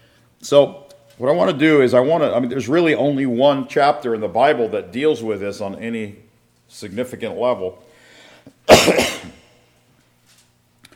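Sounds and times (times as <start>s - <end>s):
speech: 0.4s - 7.9s
harsh raspy cough from a tickle in the throat: 8.7s - 9.6s.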